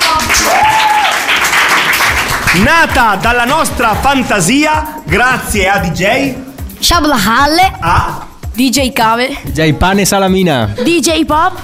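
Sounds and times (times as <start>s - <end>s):
audience applause at the end of a told story: 0.0s - 4.2s
speech: 2.6s - 11.6s.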